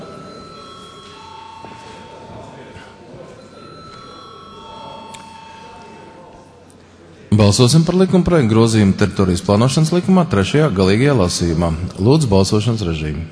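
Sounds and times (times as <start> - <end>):
electric bell ringing in a parliament chamber to call members to a vote: 0.0 - 2.6, 3.4 - 6.3
murmur of voices: 0.0 - 13.2
speech: 7.4 - 13.2.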